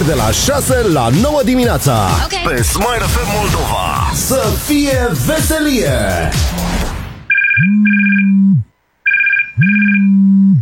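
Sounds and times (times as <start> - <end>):
speech: 0.1 - 6.6, 7.6 - 8.4, 9.6 - 10.2
telephone ringing with electronic trills: 7.3 - 8.4, 9.0 - 10.2.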